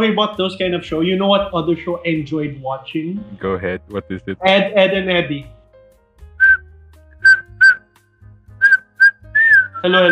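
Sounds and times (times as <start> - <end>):
speech: 0.0 - 5.6, 9.8 - 10.1
person whistling a cartoon theme tune: 6.4 - 7.8, 8.6 - 10.1.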